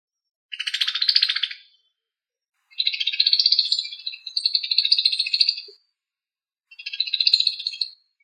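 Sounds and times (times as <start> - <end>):
bird song with scratchy chattering trills and buzzy notes: 0.5 - 1.9, 2.7 - 5.8, 6.7 - 8.2.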